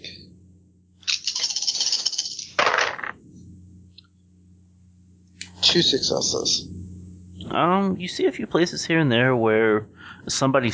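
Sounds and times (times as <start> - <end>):
dice rolling on a hard table surface for a tabletop role-playing game: 1.0 - 3.2
speech: 5.7 - 6.8, 7.6 - 10.7.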